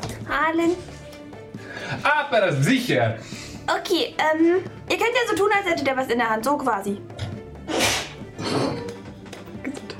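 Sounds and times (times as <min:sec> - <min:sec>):
speech: 0:00.5 - 0:00.9, 0:02.0 - 0:07.8
person sneezing: 0:07.7 - 0:08.9.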